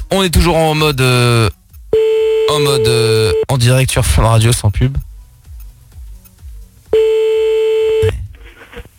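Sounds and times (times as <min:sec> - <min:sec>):
speech: 0:00.1 - 0:01.6, 0:02.5 - 0:05.1
telephone beep as a prank call is placed: 0:02.0 - 0:03.5, 0:07.0 - 0:08.1.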